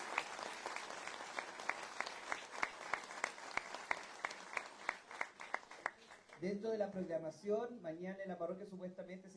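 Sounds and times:
crowd of people applauding: 0.0 - 6.5
speech: 6.4 - 9.3.

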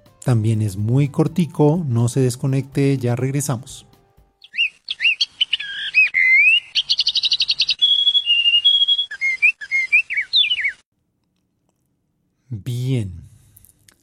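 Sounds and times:
speech: 0.2 - 3.9, 12.9 - 13.2
birds singing in Entre Nubes park in Bogotá Colombia: 4.4 - 10.8.

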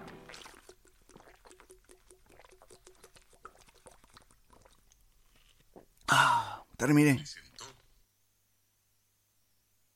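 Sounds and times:
person drinking water in quick gulps: 0.0 - 6.6
speech: 6.8 - 7.4.

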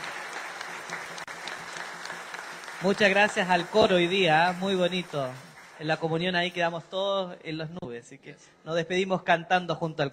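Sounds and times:
audience applauding: 0.0 - 6.2
speech: 2.8 - 10.1.

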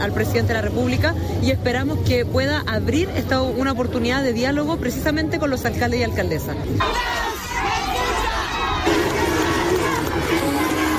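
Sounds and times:
speech: 0.0 - 7.3
loud dense crowd shouting and jeering: 6.7 - 10.9
applause: 8.9 - 10.9.

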